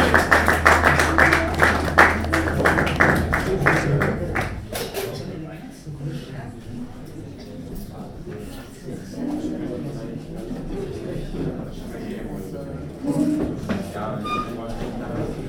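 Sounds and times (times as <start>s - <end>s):
steady low hum: 0.0s - 6.8s
loud overlapping voices: 0.0s - 15.4s.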